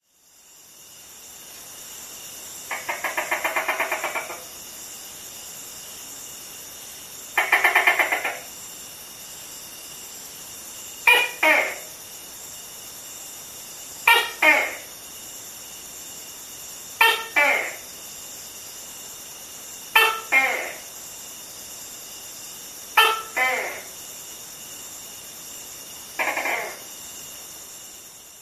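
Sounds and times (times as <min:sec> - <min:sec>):
mating call of a male Tokay gecko Gekko gecko: 0:02.7 - 0:04.5, 0:07.4 - 0:08.5, 0:11.0 - 0:12.0, 0:14.0 - 0:15.0, 0:17.0 - 0:17.9, 0:19.9 - 0:21.0, 0:23.0 - 0:24.0, 0:26.2 - 0:27.0.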